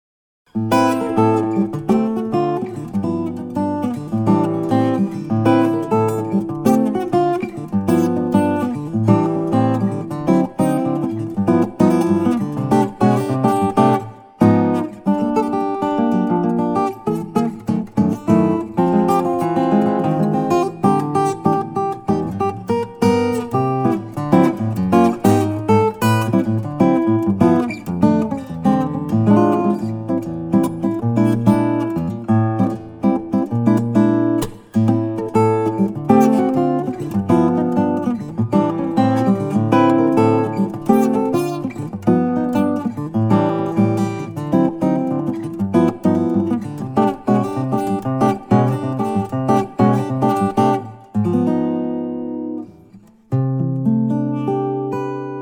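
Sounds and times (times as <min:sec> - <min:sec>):
Froggy Bottom deep body 12 fret 00 guitar: 0:00.4 - 0:55.4.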